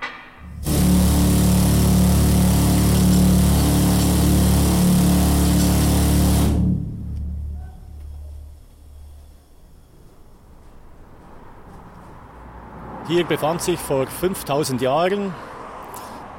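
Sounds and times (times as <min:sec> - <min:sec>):
miner's drill boring into rock: 0:00.6 - 0:06.7
faint low rumble: 0:06.6 - 0:11.5
speech: 0:13.1 - 0:15.5.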